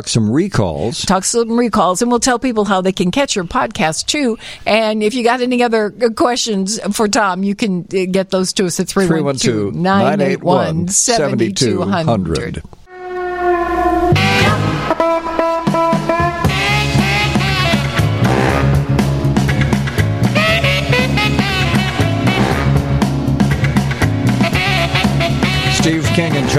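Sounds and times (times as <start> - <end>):
speech: 0.0 - 12.8, 26.2 - 26.5
upbeat humorous song with full instrumentation during radio break: 9.9 - 12.0, 14.1 - 26.5.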